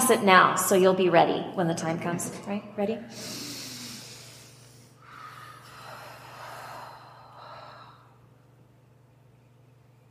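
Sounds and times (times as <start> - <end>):
speech: 0.1 - 3.5
slow deep breaths during a calming practice: 3.1 - 8.4.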